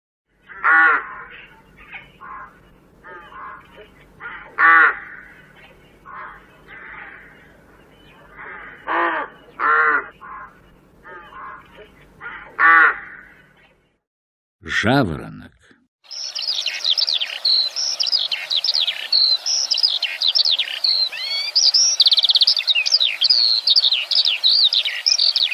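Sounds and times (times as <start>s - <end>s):
low steady hum: 0.4s - 13.9s
rook cawing: 0.5s - 1.5s, 2.1s - 13.6s, 16.1s - 25.5s
speech: 14.8s - 15.4s.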